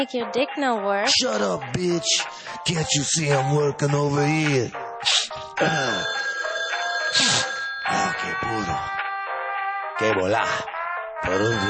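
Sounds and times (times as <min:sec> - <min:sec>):
speech: 0:00.0 - 0:06.3, 0:07.1 - 0:09.0, 0:10.0 - 0:11.6
telephone ringing with a bright electronic tone: 0:05.5 - 0:09.1, 0:11.2 - 0:11.6.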